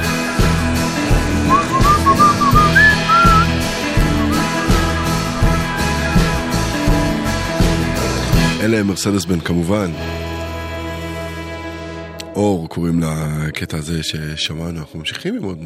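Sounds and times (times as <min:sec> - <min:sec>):
full loud band backing with steady drums and bass: 0:00.0 - 0:08.6
whistled melody in an Israeli song: 0:01.4 - 0:06.6
speech: 0:08.7 - 0:10.3, 0:12.4 - 0:15.6.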